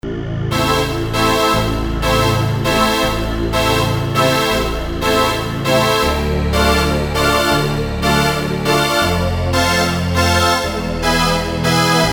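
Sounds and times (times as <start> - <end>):
synthesizer steam vents patch: 0.2 - 12.1.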